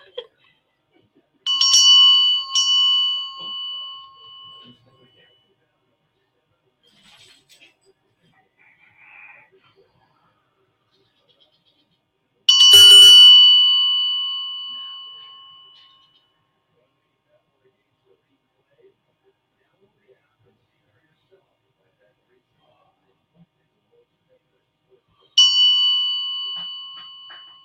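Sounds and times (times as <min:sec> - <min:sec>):
bright metallic Indian bell struck: 0:01.5 - 0:04.9, 0:12.5 - 0:16.1, 0:25.4 - 0:27.6.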